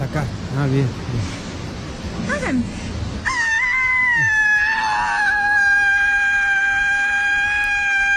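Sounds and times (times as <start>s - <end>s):
speech: 0.1s - 1.4s, 2.1s - 2.9s
woman screaming loudly at high pitch: 3.2s - 8.1s.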